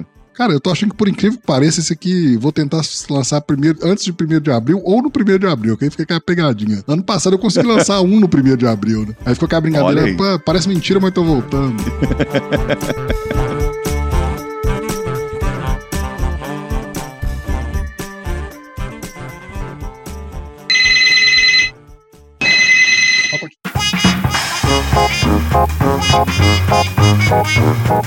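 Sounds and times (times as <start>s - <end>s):
speech: 0.4s - 13.5s, 26.1s - 28.0s
busy music: 6.6s - 20.0s, 20.6s - 21.7s, 23.7s - 28.0s
laughter: 7.4s - 8.1s, 11.7s - 13.6s
landline telephone ringing with trilling bell: 20.7s - 21.7s, 22.4s - 23.6s.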